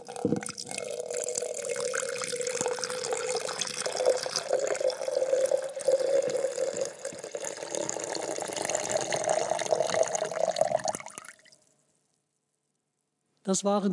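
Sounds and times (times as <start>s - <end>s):
water poured from one cup into another: 0.0s - 11.6s
speech: 0.2s - 0.6s, 13.5s - 13.9s.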